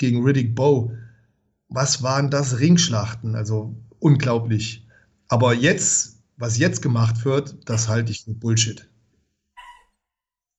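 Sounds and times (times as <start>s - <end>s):
speech: 0.0s - 1.0s, 1.7s - 8.9s
dog bark: 9.6s - 10.0s.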